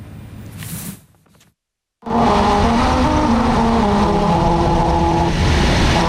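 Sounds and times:
car tires humming over a musical road playing a melody: 2.0 - 6.0.

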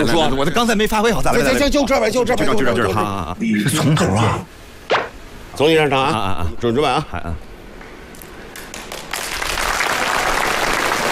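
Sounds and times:
speech: 0.0 - 5.0, 5.6 - 7.5
audience applause: 8.5 - 11.1.

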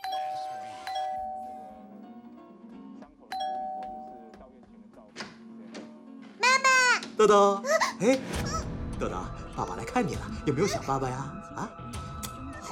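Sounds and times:
doorbell chiming ding-dong: 0.0 - 1.8, 3.3 - 4.4
speech: 7.2 - 12.0.

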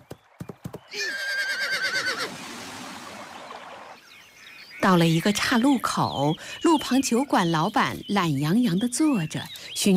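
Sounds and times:
speech: 0.9 - 1.3, 4.8 - 9.9
horse neighing: 0.9 - 2.4.

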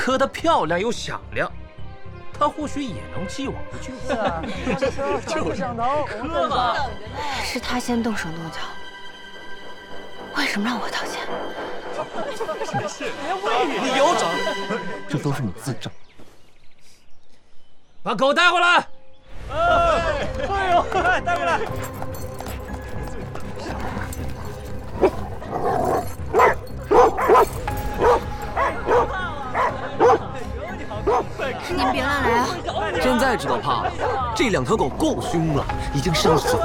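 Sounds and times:
speech: 0.0 - 1.6, 2.4 - 8.8, 10.4 - 16.0, 18.0 - 22.2, 31.7 - 36.6
laughter: 3.8 - 6.9, 11.9 - 15.2, 19.5 - 21.9, 28.7 - 34.4
two dogs barking and growling aggressively: 23.0 - 30.4, 31.0 - 32.4, 36.0 - 36.6.

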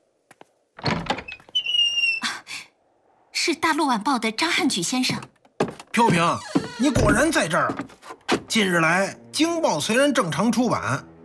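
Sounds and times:
door rattling thump: 0.8 - 1.3, 6.6 - 7.4
long high-pitched door hinge squeak: 0.8 - 2.3, 6.3 - 7.4
speech: 3.4 - 5.4, 6.0 - 7.9, 8.5 - 11.1.

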